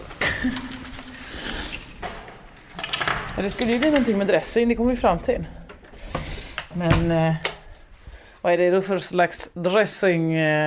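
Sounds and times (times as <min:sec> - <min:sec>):
keys dropped and clattering on a hard floor: 0:00.1 - 0:04.4
speech: 0:00.4 - 0:00.8, 0:03.4 - 0:05.6, 0:06.8 - 0:07.5, 0:08.4 - 0:10.6.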